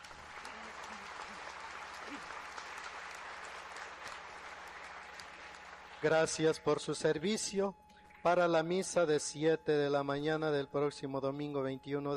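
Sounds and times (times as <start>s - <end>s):
audience applauding in a church: 0.0s - 6.6s
speech: 6.0s - 12.1s.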